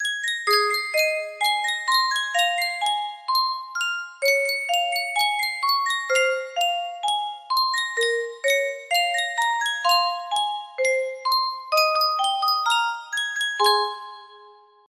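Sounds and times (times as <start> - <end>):
music box melody: 0.0 - 14.9.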